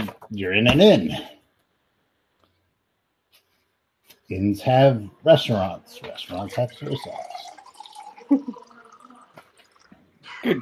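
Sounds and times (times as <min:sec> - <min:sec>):
speech: 0:00.3 - 0:01.4, 0:04.3 - 0:07.5, 0:08.3 - 0:08.6, 0:10.4 - 0:10.6
water being poured into a glass: 0:06.0 - 0:10.0.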